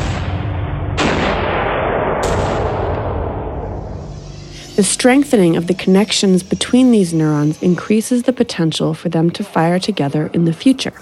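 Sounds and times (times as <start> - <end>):
row of cannons firing in sequence: 0.0 - 4.1
sustained rumble of cannon fire: 2.2 - 9.8
speech: 4.8 - 10.9.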